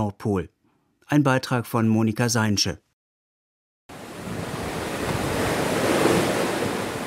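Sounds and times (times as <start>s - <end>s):
speech: 0.0s - 2.9s
ocean waves breaking against a ship's bow: 3.9s - 7.0s.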